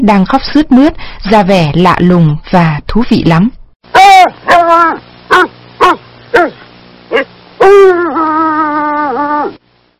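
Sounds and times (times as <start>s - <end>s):
speech: 0.0s - 9.6s
dog barking and yelping: 4.0s - 9.6s.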